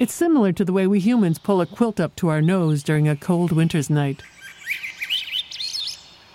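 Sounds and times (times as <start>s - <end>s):
speech: 0.0s - 4.8s
bird chirping: 0.0s - 6.3s.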